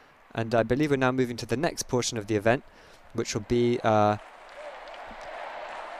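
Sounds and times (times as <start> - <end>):
speech: 0.3 - 4.3
stadium crowd noise: 3.1 - 5.9
stadium crowd applause: 3.4 - 5.9.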